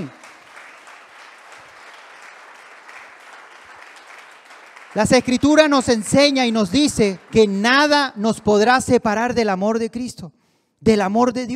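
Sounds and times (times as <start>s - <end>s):
speech: 0.0s - 0.2s, 4.9s - 11.5s
audience applauding: 0.0s - 8.9s.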